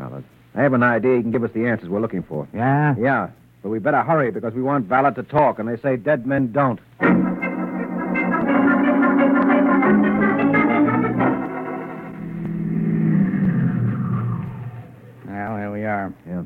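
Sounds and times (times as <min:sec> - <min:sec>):
speech: 0:00.6 - 0:07.3
brief wavering tone: 0:07.4 - 0:15.3
car engine droning as the vehicle drives: 0:11.4 - 0:15.3.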